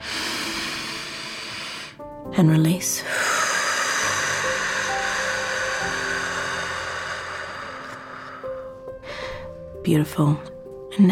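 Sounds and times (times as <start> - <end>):
deep inhalation during a guided breathing exercise: 0.0 - 2.0, 3.0 - 9.6
speech: 2.3 - 3.2, 9.9 - 11.1.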